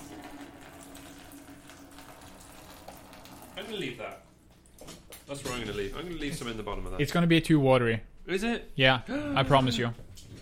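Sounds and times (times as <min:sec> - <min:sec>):
hot noodle water poured out of a pot into a bucket: 0:00.0 - 0:04.2
speech: 0:03.7 - 0:04.3, 0:05.3 - 0:10.0.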